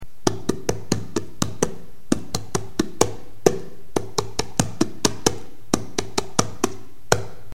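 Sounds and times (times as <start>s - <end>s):
drum: 0.2s - 7.5s.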